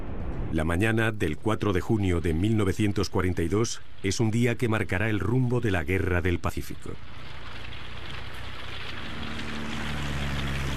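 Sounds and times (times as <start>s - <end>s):
speech: 0.5s - 7.4s
Japanese propeller warplanes droning overhead in attack on Midway: 7.0s - 10.7s.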